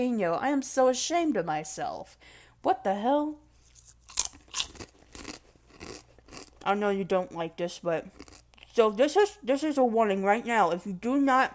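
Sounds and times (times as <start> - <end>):
speech: 0.0 - 3.4, 6.6 - 8.2, 8.8 - 11.5
kettle-cooked hot jalapeno potato chips being chewed: 3.6 - 6.8, 8.1 - 8.8.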